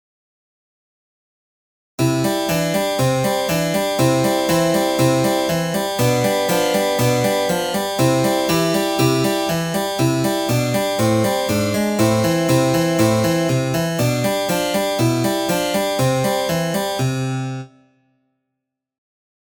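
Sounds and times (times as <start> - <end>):
harpsichord arrangement: 2.0 - 17.6.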